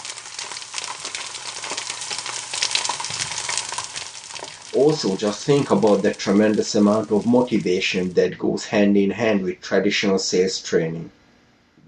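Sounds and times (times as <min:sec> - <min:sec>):
sausage sizzling in a frying pan: 0:00.0 - 0:08.2
speech: 0:04.7 - 0:11.2.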